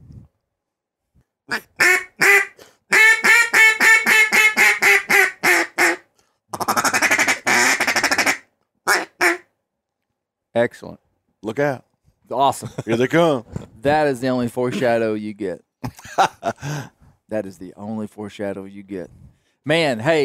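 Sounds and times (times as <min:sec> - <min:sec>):
speech: 0:01.5 - 0:01.9, 0:10.6 - 0:20.2
duck call blown in a series of loud quacks: 0:01.5 - 0:09.5
laughter: 0:12.6 - 0:13.2, 0:15.8 - 0:16.9.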